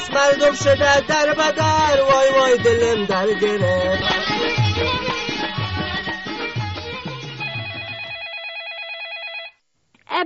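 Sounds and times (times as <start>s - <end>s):
speech: 0.2s - 5.6s
melodic electronic telephone ringtone: 7.4s - 9.6s.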